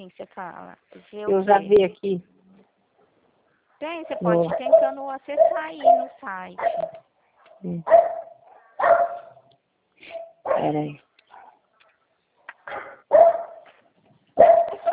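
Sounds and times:
speech: 0:00.0 - 0:02.4, 0:03.8 - 0:07.0, 0:07.6 - 0:08.2, 0:08.8 - 0:09.2, 0:10.0 - 0:11.0
dog barking: 0:04.2 - 0:11.7, 0:12.4 - 0:13.8, 0:14.4 - 0:14.9.

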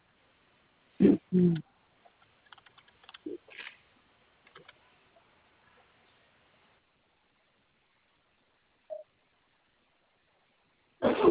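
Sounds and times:
speech: 0:01.0 - 0:01.7
typing on a computer keyboard: 0:02.2 - 0:03.7, 0:04.5 - 0:04.8.

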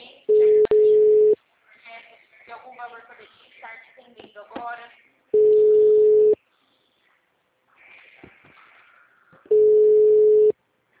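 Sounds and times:
telephone busy signal with long steady mid-pitched tones: 0:00.3 - 0:01.4, 0:05.4 - 0:06.4, 0:09.5 - 0:10.5.

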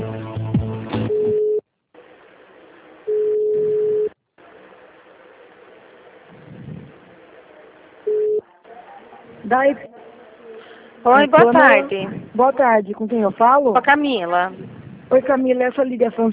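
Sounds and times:
brief buzzy telephone line tone: 0:01.1 - 0:01.6, 0:03.0 - 0:04.2, 0:08.0 - 0:08.5
telephone line tones while a call is transferred: 0:01.1 - 0:01.6, 0:03.1 - 0:04.2, 0:08.1 - 0:08.4
faint telephone line hiss: 0:03.0 - 0:05.6, 0:08.0 - 0:08.4
speech: 0:09.5 - 0:09.9, 0:11.0 - 0:16.3.

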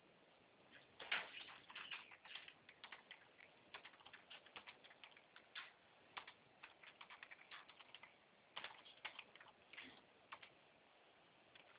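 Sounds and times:
keyboard keystrokes typing a verification code: 0:01.0 - 0:10.5.

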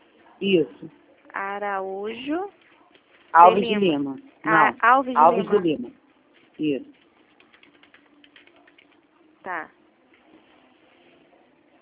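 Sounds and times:
speech: 0:00.4 - 0:02.6, 0:03.3 - 0:06.0, 0:06.6 - 0:07.0, 0:09.4 - 0:09.8
keyboard typing at a table: 0:06.4 - 0:09.1.

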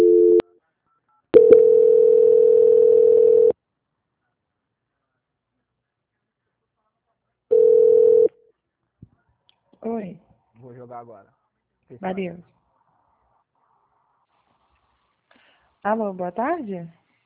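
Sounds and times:
telephone tones while a call is being transferred: 0:00.0 - 0:00.4, 0:01.4 - 0:03.6, 0:07.5 - 0:08.3
speech: 0:11.0 - 0:12.6, 0:15.8 - 0:17.0.

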